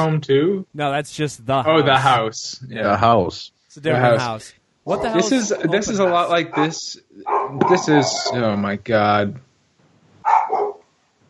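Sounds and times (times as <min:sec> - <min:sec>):
speech: 0:00.0 - 0:09.4
laughter: 0:01.4 - 0:07.0, 0:07.6 - 0:09.3
dog barking: 0:05.9 - 0:08.6, 0:10.3 - 0:10.8.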